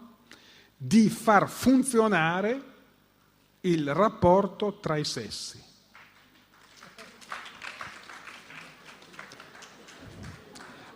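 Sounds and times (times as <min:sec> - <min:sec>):
speech: 0:00.8 - 0:02.7, 0:03.6 - 0:05.7
audience applause: 0:06.0 - 0:10.9.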